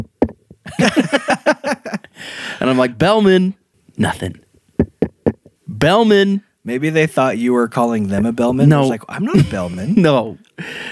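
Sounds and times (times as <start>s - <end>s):
loud hollow knocks on a microphone: 0.0s - 0.6s, 4.8s - 5.6s
laughter: 0.7s - 2.9s
speech: 2.7s - 4.4s, 5.8s - 10.8s.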